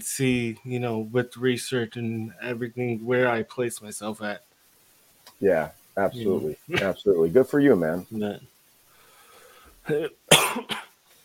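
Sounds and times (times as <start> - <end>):
speech: 0.0 - 4.5, 5.4 - 8.5, 9.9 - 10.8
loud harsh cough: 9.9 - 10.9
rough voiced throat-clearing rasp: 9.9 - 10.9.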